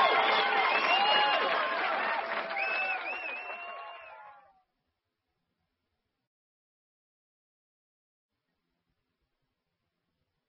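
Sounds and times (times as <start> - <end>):
audience clapping: 0.0 - 4.6.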